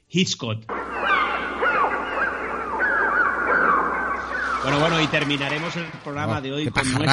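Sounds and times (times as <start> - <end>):
speech: 0.1 - 0.8, 4.6 - 7.1
flock of birds calling with harsh honking cries: 0.7 - 6.2.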